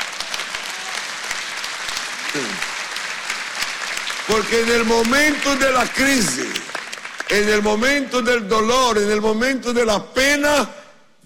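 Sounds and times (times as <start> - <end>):
audience applause: 0.0 - 7.9
speech: 4.3 - 6.6, 7.3 - 11.2.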